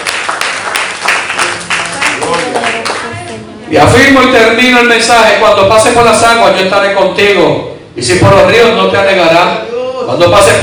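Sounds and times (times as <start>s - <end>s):
audience applauding: 0.0s - 3.4s
speech: 3.7s - 10.6s.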